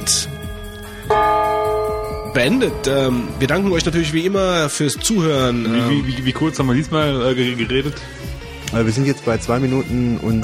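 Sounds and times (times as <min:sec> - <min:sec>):
speech: 0:00.0 - 0:00.4, 0:02.4 - 0:10.4
gong strike: 0:01.1 - 0:04.5.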